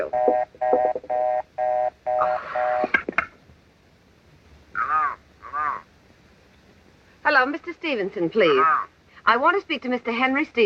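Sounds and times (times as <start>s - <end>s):
telephone ringing with electronic tone bursts: 0.0s - 2.9s
speech: 7.4s - 10.6s.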